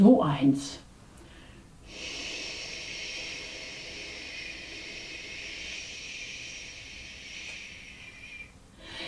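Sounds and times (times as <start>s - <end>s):
speech: 0.0s - 0.8s
person blowing to imitate the wind: 1.9s - 9.0s.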